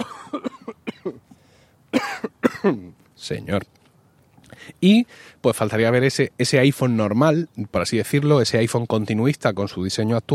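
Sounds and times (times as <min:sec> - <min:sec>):
dry coughs: 0:00.0 - 0:01.3, 0:01.9 - 0:02.9
throat-clearing rasp: 0:00.0 - 0:01.3, 0:02.0 - 0:02.9
speech: 0:01.0 - 0:01.3, 0:02.6 - 0:03.8, 0:04.5 - 0:10.3.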